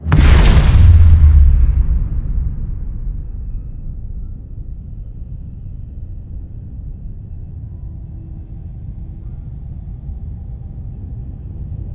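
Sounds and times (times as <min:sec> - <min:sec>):
star explosion: 0:00.0 - 0:07.0.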